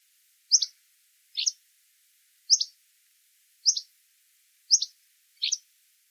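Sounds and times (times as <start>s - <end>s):
Hammond's flycatcher calls: 0.5s - 0.7s, 1.4s - 1.6s, 2.5s - 2.7s, 3.6s - 3.9s, 4.7s - 5.6s.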